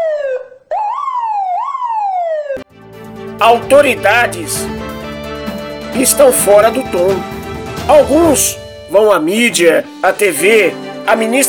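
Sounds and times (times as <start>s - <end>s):
police siren wailing: 0.0s - 2.7s
speech: 3.4s - 4.8s, 6.0s - 11.4s.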